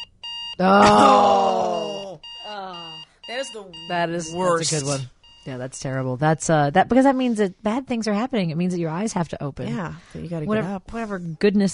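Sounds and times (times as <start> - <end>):
alarm clock electronic tone beeping: 0.0 - 6.0
speech: 0.6 - 1.4, 3.4 - 11.7.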